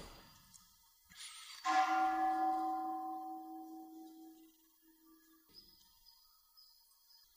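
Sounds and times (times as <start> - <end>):
temple bell ringing: 1.6 - 5.1.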